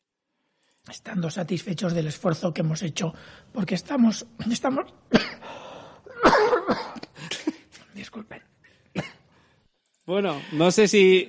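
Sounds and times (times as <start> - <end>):
speech: 0.8 - 5.6, 8.2 - 9.1, 10.1 - 11.2
person coughing: 5.1 - 5.5, 6.1 - 7.8, 8.9 - 9.3.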